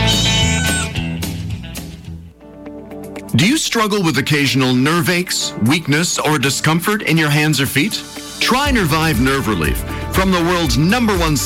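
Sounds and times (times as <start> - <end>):
cat meowing: 0.0 - 1.2
steady upbeat musical backing: 0.0 - 11.4
speech: 3.4 - 11.4.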